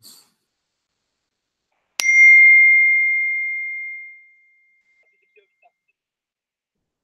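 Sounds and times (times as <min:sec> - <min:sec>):
phone message notification ding: 0:02.0 - 0:04.3.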